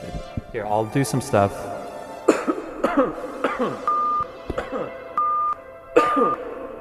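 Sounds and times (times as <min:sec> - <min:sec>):
speech: 0:00.5 - 0:01.7, 0:03.0 - 0:05.0, 0:06.1 - 0:06.5
harsh coughing: 0:02.3 - 0:03.9, 0:04.5 - 0:05.0, 0:06.0 - 0:06.6
throat clearing: 0:02.3 - 0:03.9, 0:04.5 - 0:05.0, 0:06.0 - 0:06.6
short steady electronic beeps: 0:03.8 - 0:04.3, 0:05.2 - 0:05.6.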